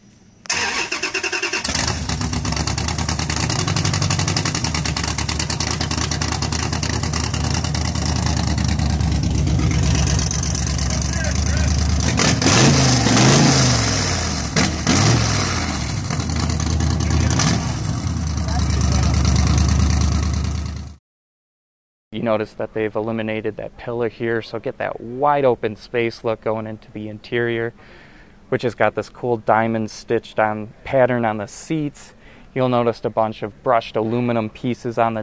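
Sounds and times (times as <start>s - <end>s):
car with 392 Hemi engine and side pipes starting, idling and revving: 0.5s - 21.0s
speech: 22.3s - 35.2s.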